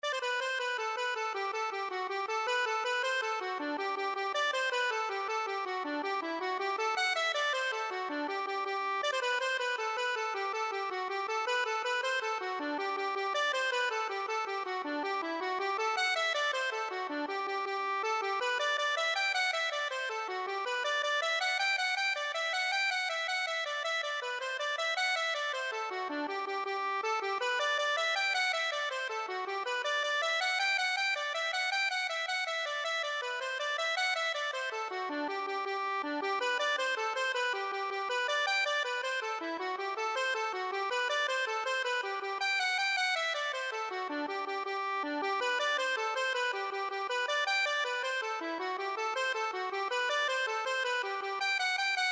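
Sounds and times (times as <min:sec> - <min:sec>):
accordion playing a jig: 0:00.0 - 0:52.0.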